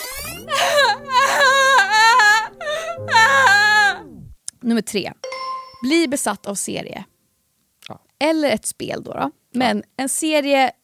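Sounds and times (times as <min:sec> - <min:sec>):
played-back recording of a person sobbing and wailing: 0:00.0 - 0:04.0
steady low hum: 0:00.0 - 0:04.4
speech: 0:04.7 - 0:05.2, 0:05.8 - 0:07.1, 0:07.8 - 0:10.8.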